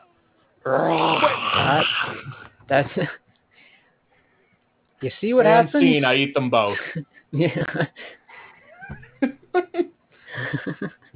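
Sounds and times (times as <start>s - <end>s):
speech: 0.6s - 3.2s, 5.0s - 8.2s, 10.4s - 11.1s
person imitating a wolf with a growling howl: 0.7s - 2.3s
laughter: 6.6s - 8.2s, 8.8s - 11.1s.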